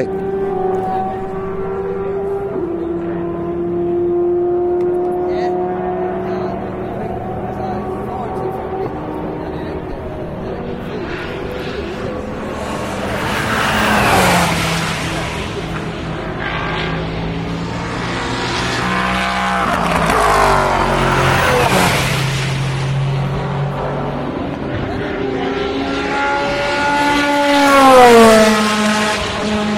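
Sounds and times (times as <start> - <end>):
Toyota Le Mans race car engine revving through gears: 0.0 - 29.7.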